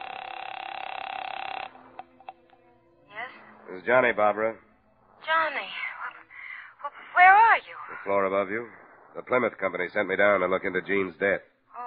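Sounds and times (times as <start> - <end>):
hotel telephone ringing with buzzing electric tone: 0.0 - 2.6
speech: 3.7 - 4.7, 8.0 - 11.5.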